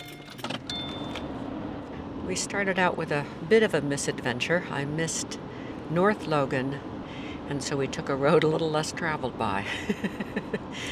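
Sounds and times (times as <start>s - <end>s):
keys jingling: 0.0s - 1.2s
speech: 2.3s - 6.9s, 7.5s - 10.9s.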